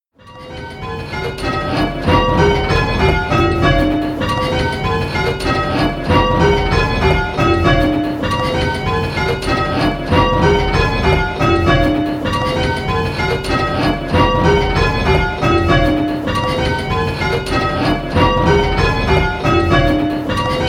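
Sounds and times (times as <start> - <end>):
six bells ringing: 0.2 - 20.6.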